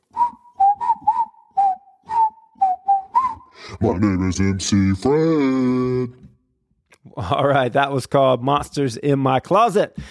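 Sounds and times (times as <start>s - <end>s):
person whistling a bouncy tuneful melody: 0.0s - 3.7s
speech: 3.7s - 6.3s, 7.2s - 10.1s.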